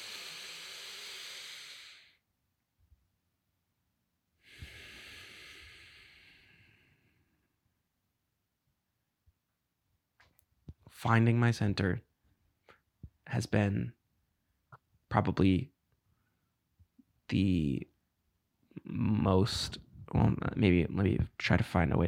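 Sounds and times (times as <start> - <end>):
slow deep breathing in and out: 0.0 - 2.2, 4.4 - 7.6
speech: 11.0 - 12.1, 13.3 - 14.0, 15.1 - 15.7, 17.3 - 17.9, 18.8 - 22.0.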